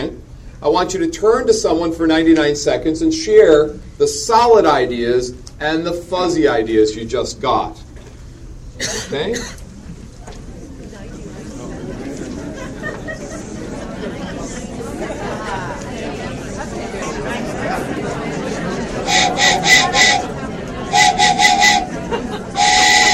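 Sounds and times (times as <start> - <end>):
speech: 0.0 - 7.8, 8.8 - 9.6
murmur of a room full of people chatting: 0.0 - 23.1
laughter: 11.2 - 23.1
passing train whistle blasts: 19.1 - 23.1.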